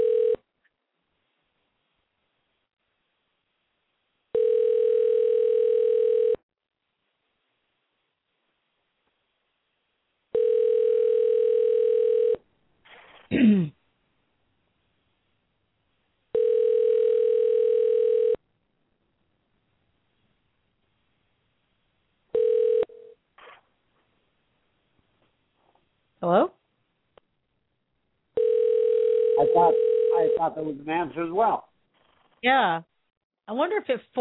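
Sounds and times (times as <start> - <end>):
telephone line tone: 0.0 - 0.4, 4.4 - 6.4, 10.3 - 12.4, 16.3 - 18.4, 22.3 - 23.2, 28.4 - 30.5
speech: 26.2 - 26.5, 29.6 - 31.7, 32.4 - 32.9, 33.5 - 34.2.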